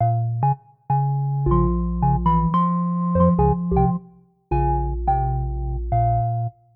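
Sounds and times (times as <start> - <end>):
tonewheel organ: 1.4 - 6.5.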